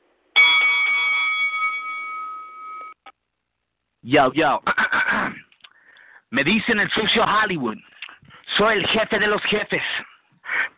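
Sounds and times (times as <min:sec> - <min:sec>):
bell ringing: 0:00.4 - 0:03.1
speech: 0:04.0 - 0:05.4, 0:06.3 - 0:07.9, 0:08.6 - 0:10.1.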